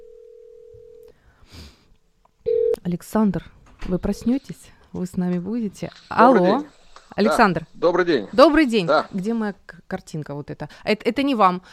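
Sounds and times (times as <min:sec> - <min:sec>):
telephone tone as a call is dialled: 0:02.5 - 0:02.8
speech: 0:02.9 - 0:11.7.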